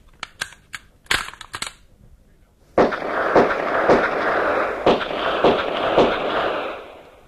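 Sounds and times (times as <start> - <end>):
gunshots fired at a target: 2.8 - 7.2.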